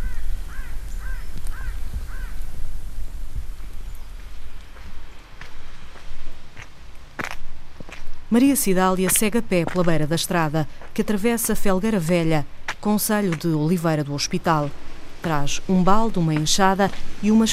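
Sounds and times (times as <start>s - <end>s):
crow cawing: 0.0s - 2.4s
speech: 8.3s - 17.5s.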